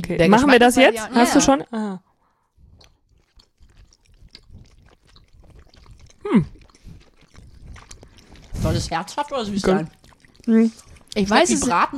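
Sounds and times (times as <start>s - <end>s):
speech: 0.0s - 2.1s, 6.2s - 6.6s, 8.6s - 11.9s
person biting into and chewing food: 2.1s - 11.9s
sharp loud bite or crunch: 2.7s - 8.7s.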